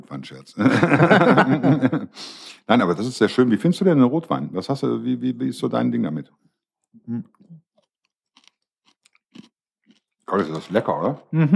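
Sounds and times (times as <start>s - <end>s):
speech: 0.1s - 7.6s, 10.3s - 11.5s
laughter: 0.5s - 2.2s, 11.4s - 11.5s
crunchy food being chewed at a meal of chicken and red wine: 6.8s - 11.3s.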